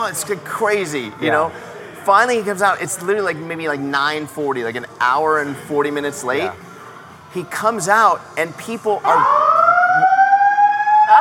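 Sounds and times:
speech: 0.0 - 6.7, 7.3 - 9.5
faint noise: 0.0 - 11.1
fire alarm blaring a steady electronic tone: 9.0 - 11.1.

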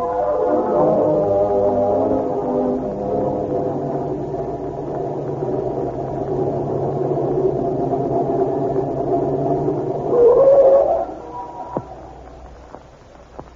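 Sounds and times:
car engine droning while driving at night without lights: 0.0 - 12.7.

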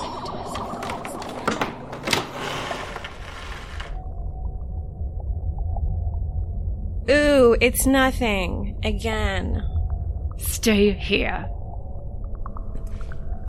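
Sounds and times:
faint hum: 0.0 - 13.4
door creaking and scraping open: 0.6 - 4.0
steady low rumble: 4.0 - 13.4
speech: 7.6 - 9.7, 10.6 - 11.6.

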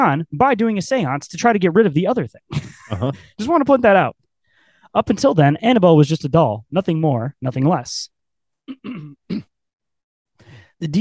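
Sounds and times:
speech: 0.0 - 4.2, 4.9 - 8.1, 8.7 - 9.5, 10.8 - 11.0
person clearing throat: 8.7 - 9.6.

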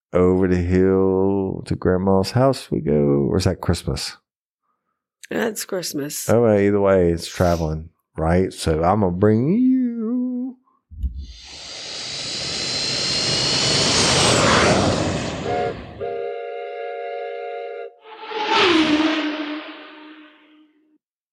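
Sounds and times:
speech: 0.1 - 4.2, 5.3 - 9.7
loud airplane engine roaring with a high whine: 11.3 - 17.0, 18.0 - 20.5.

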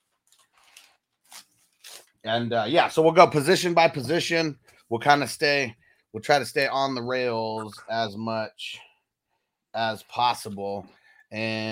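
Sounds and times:
paper rustling and crinkling: 0.0 - 2.2
speech: 2.2 - 8.9, 9.8 - 11.6.

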